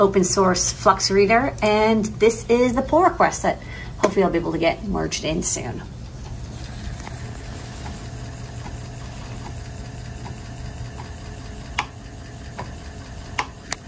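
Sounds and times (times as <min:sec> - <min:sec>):
speech: 0:00.0 - 0:06.0
5.25-inch floppy disk drive spinning: 0:00.0 - 0:13.8
5.25-inch floppy disk drive faint regular ticking: 0:03.6 - 0:13.8
5.25-inch floppy disk drive sharper clicks: 0:06.0 - 0:13.8.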